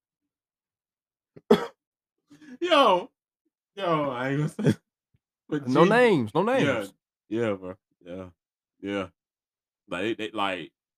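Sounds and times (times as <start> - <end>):
person coughing after hitting a weed pen: 1.4 - 1.8
raspy throaty groan or throat clearing: 1.4 - 1.8
speech: 2.6 - 3.1, 3.8 - 4.8, 5.5 - 9.2, 9.9 - 10.8.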